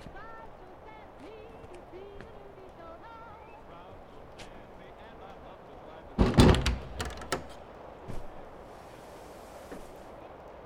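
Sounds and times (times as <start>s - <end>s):
door closing: 6.2s - 7.6s.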